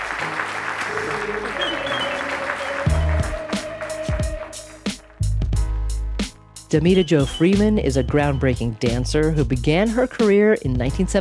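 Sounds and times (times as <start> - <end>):
large audience applause after an onstage conversation: 0.0 - 5.2
speech: 6.7 - 11.1.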